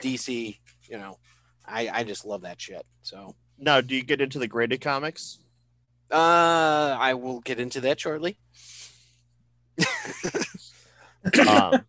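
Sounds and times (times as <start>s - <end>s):
speech: 0.0s - 5.4s, 6.1s - 8.8s, 9.8s - 10.4s, 11.2s - 11.8s
faint steady hum: 0.0s - 11.8s
man clearing his throat: 11.3s - 11.8s.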